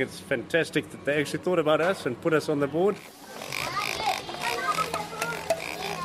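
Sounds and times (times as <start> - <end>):
speech: 0.0 - 3.6
busy noisy indoor background in a toy store: 0.0 - 6.0
mechanical tail-wagging toy pig oinking in a toy store in Johannesburg: 3.4 - 6.0.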